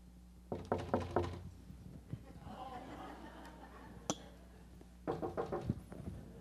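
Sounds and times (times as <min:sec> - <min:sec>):
knocking on a door: 0:00.5 - 0:01.4, 0:05.1 - 0:05.8
laughter: 0:02.2 - 0:04.7.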